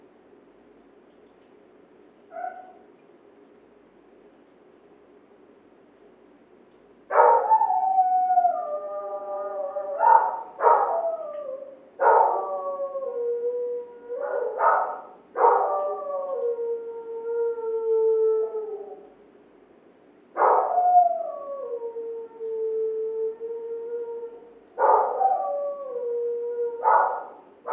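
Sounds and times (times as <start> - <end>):
dog barking and howling: 2.3 - 2.8, 7.1 - 19.0, 20.4 - 27.7.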